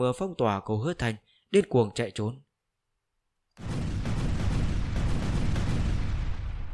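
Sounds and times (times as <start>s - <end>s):
speech: 0.0s - 2.4s
explosion roar in a fantasy battle with magic talismans: 3.6s - 6.7s.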